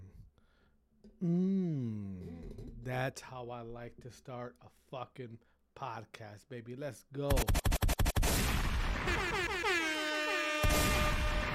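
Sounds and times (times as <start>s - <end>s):
speech: 1.2s - 1.6s, 2.8s - 7.6s
sharp gunshots fired into the air: 7.3s - 9.6s, 10.6s - 11.5s
loud blaring horn-like effect with swooping tones: 9.0s - 11.5s.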